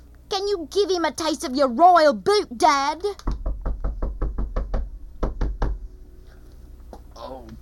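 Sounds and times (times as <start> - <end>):
speech: 0.3 - 3.3
loud sharp knocks on a wooden door: 3.2 - 5.8.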